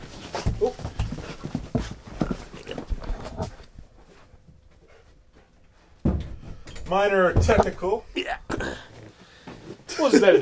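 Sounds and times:
dog paws tapping and scuffling on the floor: 0.0 - 8.0
speech: 6.9 - 8.3, 10.0 - 10.4
sudden bump: 7.3 - 8.9.

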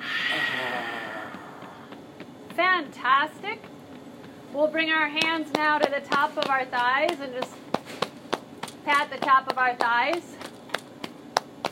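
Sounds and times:
person exhaling forcefully through the mouth during chair yoga: 0.0 - 1.9
speech: 2.6 - 3.7, 4.6 - 7.6, 8.8 - 10.4.

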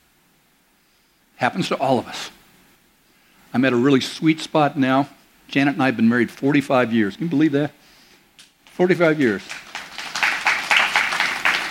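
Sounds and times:
speech: 1.4 - 2.4, 3.5 - 7.8, 8.8 - 9.7
crowd applauding: 8.9 - 11.6.

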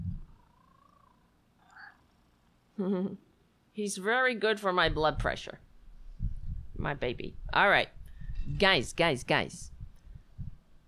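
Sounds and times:
cat purring: 0.0 - 2.0
speech: 2.8 - 5.7, 6.8 - 9.7.

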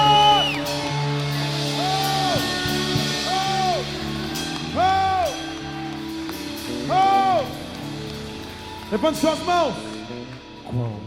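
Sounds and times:
large audience shouting a victory cry and whooping in praise: 0.0 - 7.6
sustained music: 0.0 - 11.0
speech: 9.0 - 9.9.

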